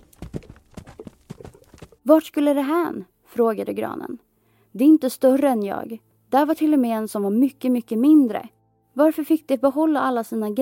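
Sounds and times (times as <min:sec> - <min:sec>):
hooves of horses pulling wagons loaded with young fir trees: 0:00.0 - 0:02.0
speech: 0:02.1 - 0:10.6.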